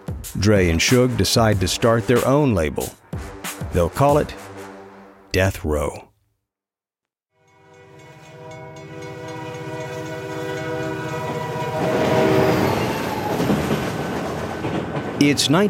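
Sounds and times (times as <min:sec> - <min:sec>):
speech: 0:00.2 - 0:03.0, 0:03.7 - 0:04.4, 0:05.3 - 0:06.1, 0:15.2 - 0:15.6
Amtrak passenger train horn blaring: 0:07.4 - 0:13.6
Amtrak passenger train rolling along the rails: 0:08.0 - 0:15.6.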